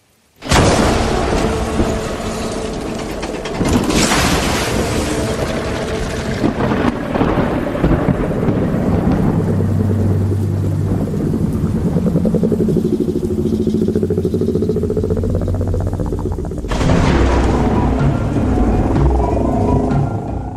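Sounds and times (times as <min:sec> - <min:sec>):
rain hissing steadily: 0:00.0 - 0:19.7
heavy crashing thunder: 0:00.4 - 0:20.5.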